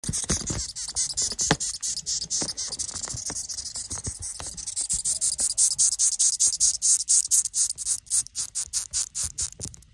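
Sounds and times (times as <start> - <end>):
moth insect: 0.0 - 9.8.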